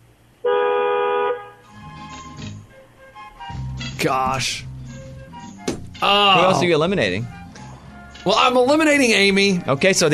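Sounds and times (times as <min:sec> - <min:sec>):
quieter mixed noise: 0:00.0 - 0:10.1
car horn honking: 0:00.4 - 0:01.8
speech: 0:04.0 - 0:04.7, 0:06.0 - 0:07.4, 0:08.2 - 0:10.1.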